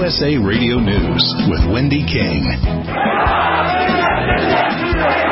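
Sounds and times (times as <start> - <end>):
speech: 0.1 - 3.1
crowd of mourners chanting angry shouts: 2.9 - 5.2.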